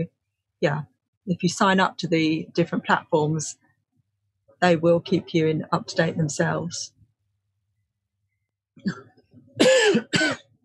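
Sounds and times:
speech: 0:00.0 - 0:03.6, 0:04.6 - 0:07.0, 0:08.8 - 0:10.4
person clearing throat: 0:08.8 - 0:10.5
harsh coughs: 0:08.8 - 0:10.6.

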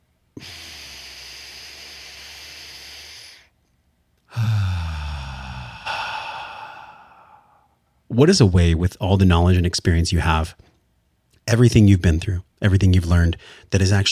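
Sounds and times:
deep belly breath in through the nose and out through the mouth: 0:00.3 - 0:03.6, 0:04.3 - 0:07.9, 0:13.4 - 0:13.7
speech: 0:08.2 - 0:10.7, 0:11.5 - 0:14.1.

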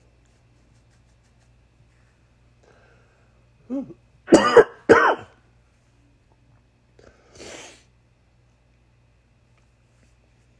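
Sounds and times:
soft breathy throat clearing: 0:03.6 - 0:05.4
person grunting: 0:03.7 - 0:04.0
person coughing harshly: 0:03.7 - 0:05.4.

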